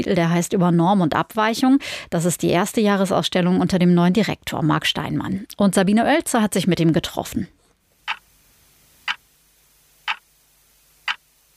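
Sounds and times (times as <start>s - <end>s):
speech: 0.0s - 7.6s
wall clock with weekdays on its dial ticking faintly: 11.1s - 11.3s.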